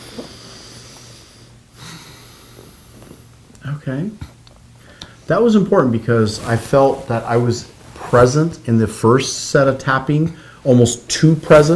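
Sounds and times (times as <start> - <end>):
deep breath in and out as a deep-breathing exercise: 0.0 - 3.3, 10.4 - 10.7
low steady hum: 0.0 - 11.7
speech: 3.7 - 4.3, 5.3 - 11.7.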